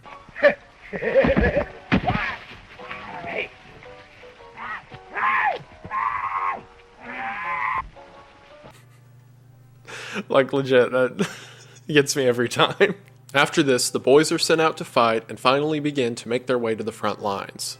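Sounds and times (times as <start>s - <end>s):
speech: 0.4s - 1.6s, 10.4s - 17.7s
laughter: 0.4s - 1.8s
scuffling noises: 1.1s - 8.8s
sharp thuds: 1.3s - 2.7s
man screaming when grabbed in a prank at night in a movie: 4.6s - 7.9s.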